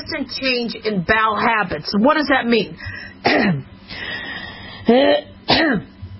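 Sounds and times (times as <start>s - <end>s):
speech: 0.0s - 4.2s, 4.8s - 5.9s
person clearing throat with short coughs: 3.2s - 3.7s, 4.8s - 6.0s.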